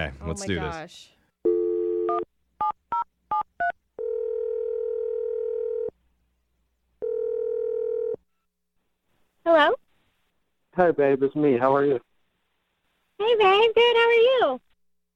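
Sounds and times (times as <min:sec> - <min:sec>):
speech: 0:00.0 - 0:01.2, 0:09.5 - 0:09.8, 0:10.8 - 0:12.1, 0:13.2 - 0:14.6
long telephone ringing tones: 0:01.4 - 0:05.9, 0:07.0 - 0:08.2
steady telephone dial tone: 0:01.5 - 0:02.3, 0:04.0 - 0:05.9, 0:07.0 - 0:08.2.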